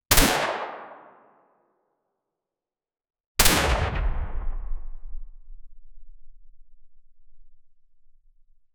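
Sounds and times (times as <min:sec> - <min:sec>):
suppressed 9mm subsonic submachine gun single shot: 0:03.4 - 0:08.6.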